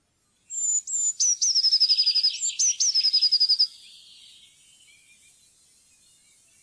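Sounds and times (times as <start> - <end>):
Eurasian blue tit singing high sliding whistles and tinkling trill: 0.5 - 4.5.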